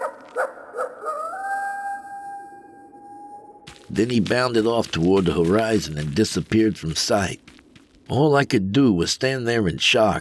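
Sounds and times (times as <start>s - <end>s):
coyote yipping and howling: 0.0s - 3.0s
speech: 3.9s - 7.5s, 8.1s - 10.1s.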